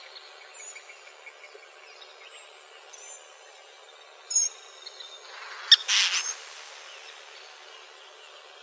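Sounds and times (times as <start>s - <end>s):
Western kingbird calls in Arizona: 5.3s - 7.5s.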